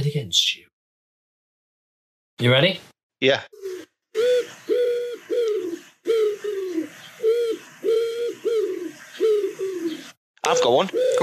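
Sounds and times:
speech: 0.1 - 0.7, 2.4 - 3.8, 10.5 - 11.2
pigeon cooing: 3.5 - 11.2.

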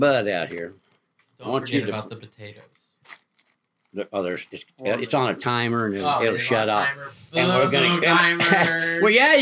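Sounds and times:
speech: 0.0 - 3.2, 3.9 - 9.4
paper crinkling and rustling: 2.6 - 4.9.

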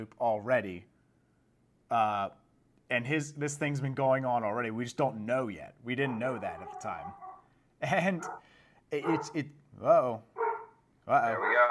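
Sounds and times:
speech: 0.0 - 0.9, 1.9 - 7.2, 7.8 - 10.4, 11.1 - 11.6
guard dog barking excitedly: 6.0 - 7.5, 8.1 - 9.4, 10.3 - 11.6.

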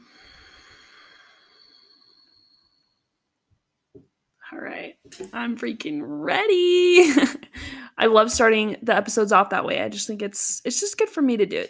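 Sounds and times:
deep exhale after a held breath during a guided breathing exercise: 0.0 - 3.2
speech: 4.8 - 7.4, 8.0 - 11.6.

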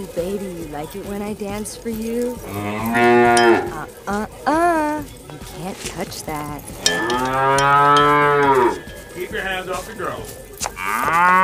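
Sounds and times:
speech: 0.0 - 11.4
cow mooing: 2.4 - 3.9, 6.8 - 9.1, 10.8 - 11.4.

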